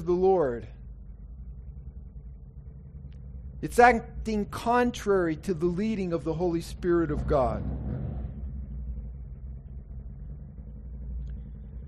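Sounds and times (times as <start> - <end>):
speech: 0.0 - 0.8, 3.6 - 7.8
passing motorcycle engine rumbling outside: 6.8 - 11.8.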